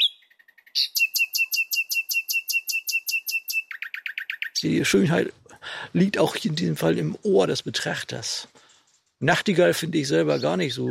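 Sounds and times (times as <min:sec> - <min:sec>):
faint soft blackbird calls: 0:00.0 - 0:04.6
blackbird song in its fluting part: 0:00.0 - 0:04.8, 0:10.1 - 0:10.8
speech: 0:04.6 - 0:08.6, 0:09.2 - 0:10.8.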